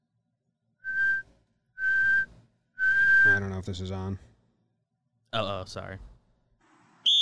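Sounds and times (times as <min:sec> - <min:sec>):
whistle blasts signalling halftime: 0:00.8 - 0:03.4, 0:07.0 - 0:07.2
speech: 0:03.6 - 0:04.3, 0:05.3 - 0:06.1.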